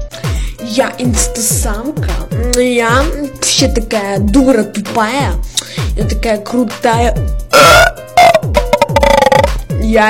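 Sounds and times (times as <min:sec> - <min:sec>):
speech: 0:00.6 - 0:08.0
loud burp into the microphone: 0:07.5 - 0:09.6.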